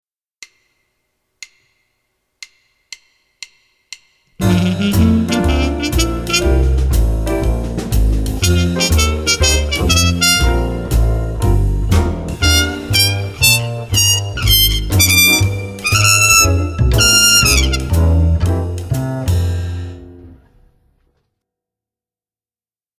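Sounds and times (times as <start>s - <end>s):
G major scale over three octaves: 4.4s - 19.3s.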